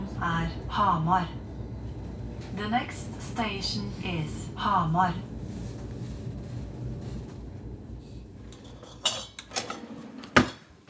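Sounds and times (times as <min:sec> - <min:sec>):
low steady rumbling background: 0:00.0 - 0:09.1
speech: 0:00.2 - 0:01.4, 0:02.4 - 0:05.3
pots and cutlery clattering while cooking lamb chops and potatoes: 0:08.5 - 0:10.8.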